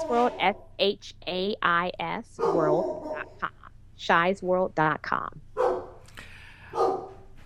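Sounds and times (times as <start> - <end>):
speech: 0.1 - 5.4
dog barking: 2.4 - 3.4, 5.6 - 6.0, 6.7 - 7.2.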